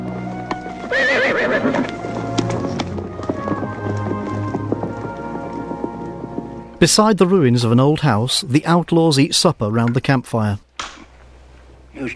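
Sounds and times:
ridden horses' hooves clip-clopping: 0.0s - 9.1s
loud high horse whinny: 0.8s - 2.0s
speech: 0.9s - 2.0s, 6.8s - 10.7s.

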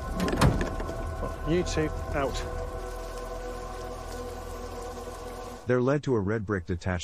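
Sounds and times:
metallic clunks and rattles of a truck's back door opening: 0.1s - 0.9s
speech: 1.5s - 2.6s, 5.7s - 7.0s.

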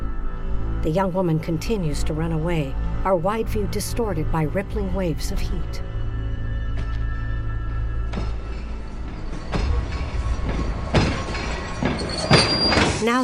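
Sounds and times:
speech: 0.8s - 5.9s, 13.0s - 13.2s
sharp metallic bursts and squeals of a train: 6.0s - 13.1s
passenger train running along the rails in Central Australia: 7.2s - 13.2s
rhythmic train wheel clatter: 8.0s - 13.0s.

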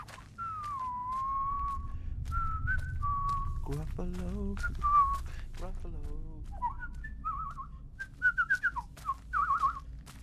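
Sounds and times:
person whistling a cheerful tune: 0.0s - 3.6s, 6.5s - 9.8s
faint low rumble: 0.0s - 10.2s
speech: 3.7s - 5.0s, 5.6s - 6.9s.

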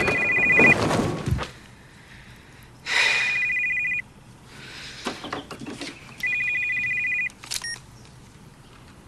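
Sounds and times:
telephone ringing: 0.0s - 0.8s, 3.0s - 4.0s, 6.2s - 7.8s
rustles and thumps: 0.0s - 1.6s.

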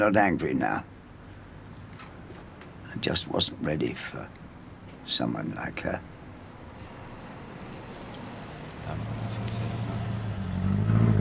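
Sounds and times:
speech: 0.0s - 0.9s, 3.0s - 4.4s, 5.0s - 6.1s
car sweeping past outside a cafe, low engine rumble: 6.3s - 11.1s.

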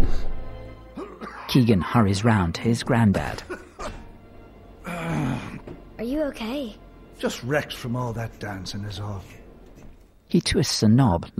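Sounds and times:
old man coughing: 1.0s - 1.6s, 3.3s - 4.2s
speech: 1.6s - 3.6s, 6.2s - 9.4s, 10.3s - 11.3s.

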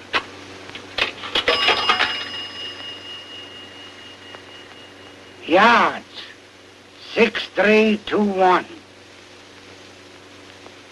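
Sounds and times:
coin dropping into the slot of a pay phone in a phone booth: 1.2s - 2.9s
faint thin ringing tone: 1.3s - 6.4s
speech: 5.5s - 6.0s, 7.2s - 8.8s.

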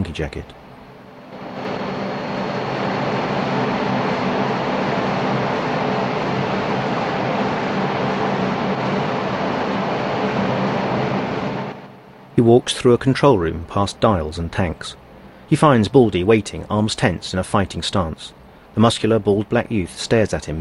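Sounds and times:
speech: 0.1s - 0.7s, 12.4s - 20.6s
low hum: 0.5s - 15.5s
boiler room machinery roaring in a huge chamber: 0.9s - 12.4s.

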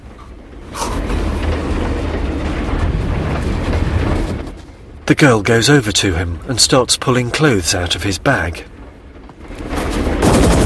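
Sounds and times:
freight train carriage rumbling and rattling along the rails: 0.0s - 10.6s
speech: 5.1s - 8.7s.

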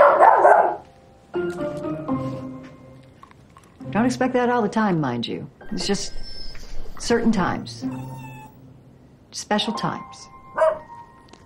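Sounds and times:
dog barking excitedly: 0.0s - 0.8s, 10.6s - 10.9s
speech: 4.0s - 6.2s, 7.0s - 8.2s, 9.3s - 10.3s.

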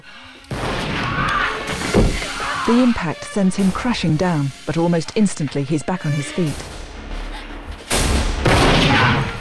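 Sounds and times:
gunshots fired at a man in a confrontation: 0.5s - 2.6s, 7.9s - 9.4s
speech: 2.7s - 6.7s.

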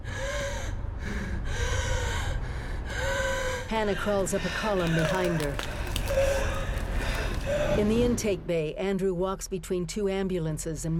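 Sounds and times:
woman gasping and breathing laboriously, struggling for air: 0.0s - 7.8s
speech: 3.7s - 6.4s, 7.5s - 10.9s.

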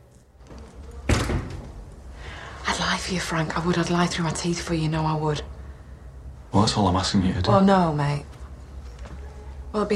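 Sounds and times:
low hum: 0.0s - 9.9s
cell door slamming shut: 1.1s - 1.7s
speech: 3.0s - 5.5s, 6.6s - 8.3s, 9.7s - 9.9s.

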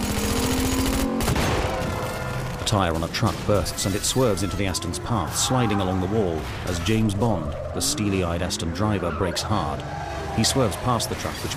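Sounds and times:
rapid gunfire from pursuers during a car chase: 0.0s - 4.0s
speech: 2.7s - 11.5s.

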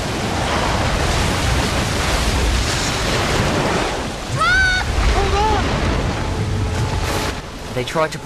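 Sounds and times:
rushing cascading waterfall roaring: 0.2s - 8.2s
brief high-pitched cry: 4.4s - 5.6s
speech: 7.8s - 8.2s.

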